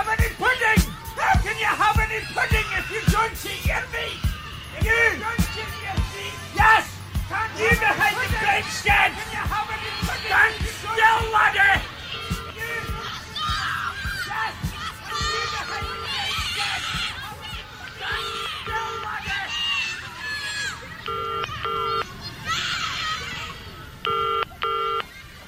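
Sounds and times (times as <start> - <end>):
busy background of voices and crowd noise: 0.0 - 25.4
laughter: 0.0 - 25.4
telephone keypad dialing beeps: 24.1 - 25.1.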